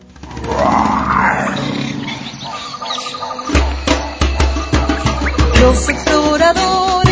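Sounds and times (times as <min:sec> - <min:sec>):
lion roaring: 0:00.2 - 0:05.5
lion grunting: 0:00.2 - 0:06.2
speech: 0:05.6 - 0:07.0.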